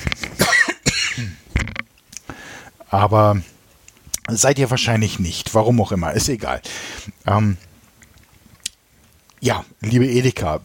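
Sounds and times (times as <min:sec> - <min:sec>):
person clearing throat: 0:00.4 - 0:01.4
person coughing: 0:00.4 - 0:01.4
speech: 0:02.9 - 0:03.5, 0:04.3 - 0:07.7, 0:09.4 - 0:10.6.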